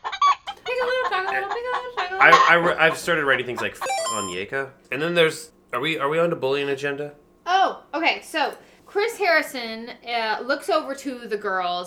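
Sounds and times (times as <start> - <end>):
chicken cackling: 0.1 - 4.7
speech: 1.2 - 7.2, 7.9 - 11.8.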